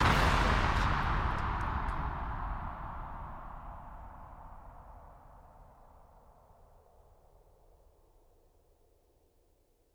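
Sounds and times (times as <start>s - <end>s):
explosion blast: 0.0s - 2.7s.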